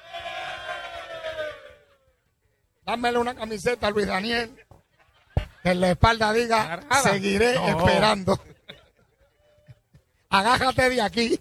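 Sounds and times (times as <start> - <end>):
studio audience shouting in answer to a poll: 0.0 - 2.0
speech: 2.9 - 4.6, 5.6 - 8.5, 10.3 - 11.4
laughter: 4.2 - 6.0, 6.6 - 10.2.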